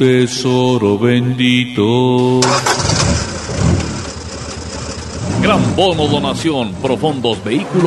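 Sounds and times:
speech: 0:00.0 - 0:03.0, 0:05.5 - 0:07.8
Toyota jeep engine starting up: 0:02.4 - 0:07.8.

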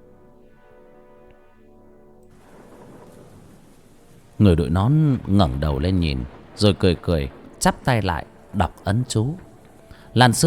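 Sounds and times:
rain falling during a sudden storm: 0:02.3 - 0:10.4
thunder: 0:02.3 - 0:10.4
speech: 0:04.4 - 0:09.5, 0:10.1 - 0:10.4.

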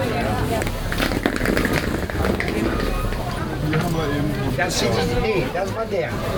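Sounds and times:
overlapping voices and stall chatter at an outdoor market: 0:00.0 - 0:06.3
shuffling footsteps: 0:00.5 - 0:04.0
clatter: 0:00.6 - 0:03.2
speech: 0:04.6 - 0:06.3.

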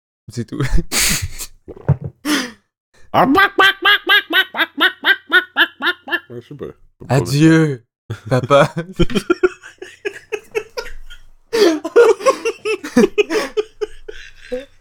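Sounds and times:
speech: 0:00.3 - 0:01.9, 0:03.1 - 0:03.8, 0:06.3 - 0:09.4, 0:13.0 - 0:13.3
person imitating chicken clucking: 0:03.2 - 0:06.4
laughter: 0:03.2 - 0:06.5, 0:08.1 - 0:14.7.

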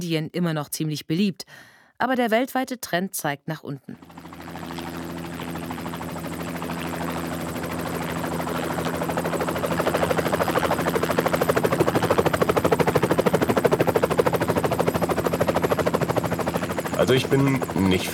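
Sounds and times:
speech: 0:00.0 - 0:04.3, 0:17.1 - 0:18.1
helicopter rotor chopping: 0:03.9 - 0:18.1.

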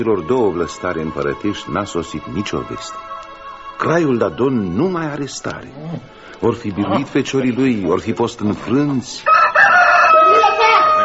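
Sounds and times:
speech: 0:00.0 - 0:03.2, 0:03.8 - 0:09.4
rooster crowing: 0:09.2 - 0:11.0.

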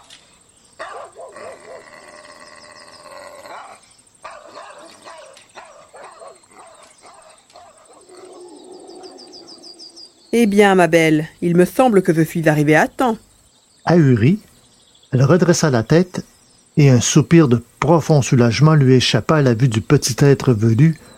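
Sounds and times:
dog barking furiously and moving away: 0:00.8 - 0:02.4, 0:03.3 - 0:09.6
speech: 0:10.3 - 0:13.2, 0:13.8 - 0:14.5, 0:15.1 - 0:21.1.

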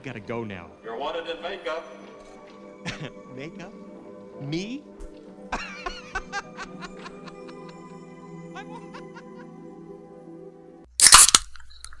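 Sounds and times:
speech: 0:00.0 - 0:03.8, 0:04.4 - 0:05.7
laughter: 0:02.8 - 0:03.2, 0:05.5 - 0:07.9, 0:08.6 - 0:09.5
drink can cracked open with a sharp pop and fizz hiss: 0:11.0 - 0:11.9.

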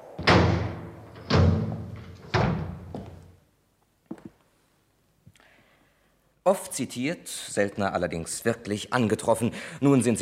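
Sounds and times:
heavy booming thuds of a door being closed in a radio drama studio scene: 0:00.2 - 0:03.2
speech: 0:06.5 - 0:10.2.

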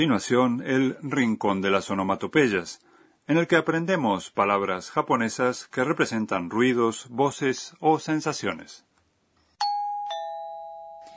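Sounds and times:
speech: 0:00.0 - 0:08.9
two-note musical doorbell chime: 0:09.6 - 0:11.1.

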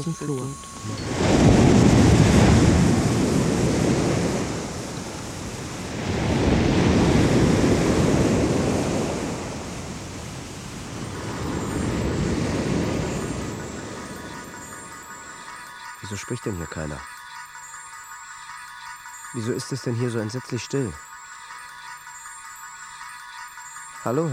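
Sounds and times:
speech: 0:00.0 - 0:01.8, 0:16.1 - 0:17.2, 0:19.3 - 0:21.1, 0:24.0 - 0:24.3
sea surf waves rushing: 0:00.0 - 0:16.6.

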